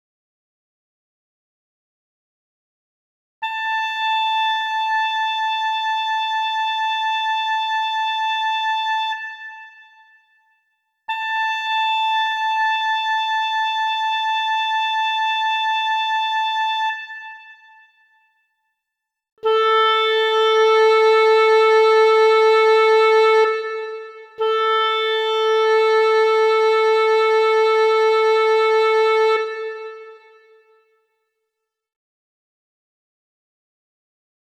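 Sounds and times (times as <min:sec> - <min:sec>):
oboe playing an A at 440: 0:03.4 - 0:10.0, 0:11.1 - 0:18.0, 0:19.4 - 0:30.8.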